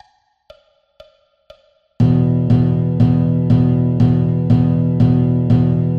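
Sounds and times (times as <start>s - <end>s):
blues rhythm: 1.5s - 5.9s.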